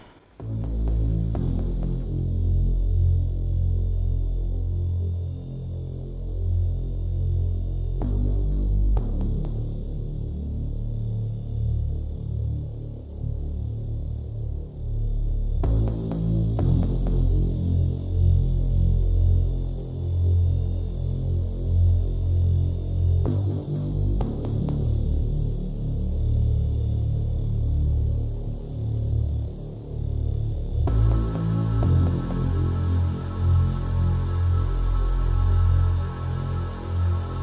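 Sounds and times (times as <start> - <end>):
dense throbbing low drone in minimal experimental electronic music: 0.0 - 37.4.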